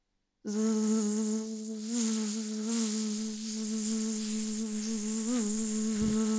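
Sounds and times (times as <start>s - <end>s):
mosquito buzzing: 0.5s - 6.3s.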